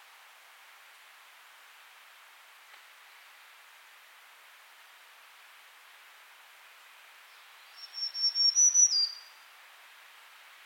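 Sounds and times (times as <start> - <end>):
light background hiss: 0.0 - 10.6
Black-throated green warbler Setophaga virens buzzy phrase: 7.3 - 9.4.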